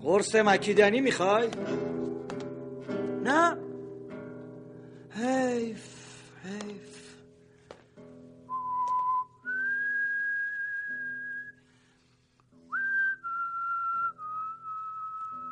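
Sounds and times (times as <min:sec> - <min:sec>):
speech: 0:00.0 - 0:02.0, 0:03.2 - 0:03.6, 0:05.2 - 0:07.0
person whistling a slow wandering tune: 0:08.5 - 0:11.7, 0:12.7 - 0:15.5.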